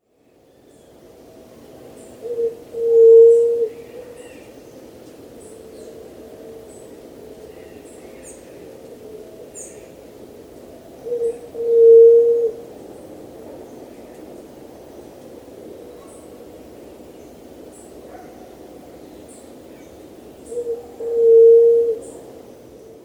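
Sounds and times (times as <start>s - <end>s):
juriti pupu dove calling: 2.0s - 10.1s, 10.9s - 12.8s, 17.8s - 23.0s.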